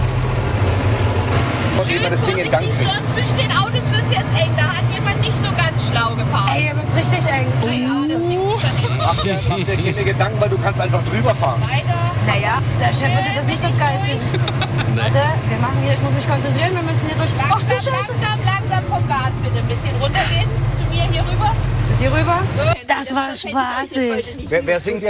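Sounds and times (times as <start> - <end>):
heavy diesel tractor engine idling and rumbling at a farm festival: 0.0 - 25.0
lively crowd chatter at a farm festival: 1.6 - 25.0
laughter: 8.3 - 10.5, 14.0 - 15.3.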